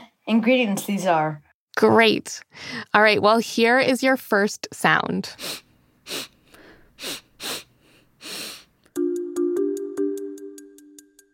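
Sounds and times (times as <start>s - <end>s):
speech: 0.3s - 6.3s, 7.0s - 7.6s
loud breathy nasal sniffing: 5.4s - 8.8s.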